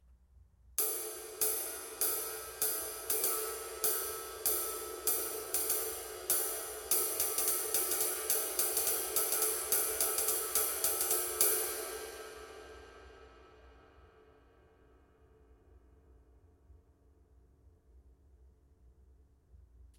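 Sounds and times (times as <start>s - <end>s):
20in light flat ride cymbal: 0.8s - 14.3s.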